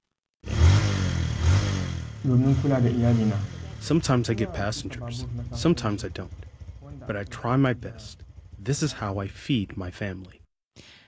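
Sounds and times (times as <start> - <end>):
motorcycle taxi engine starting and revving: 0.4 - 9.6
speech: 2.2 - 11.0.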